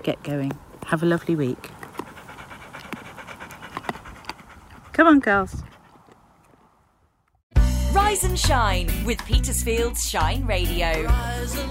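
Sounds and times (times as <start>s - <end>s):
speech: 0.0s - 1.8s, 5.0s - 5.7s, 7.9s - 11.6s
dog chewing on a piece of bark: 0.4s - 6.8s
dog panting: 1.4s - 6.7s.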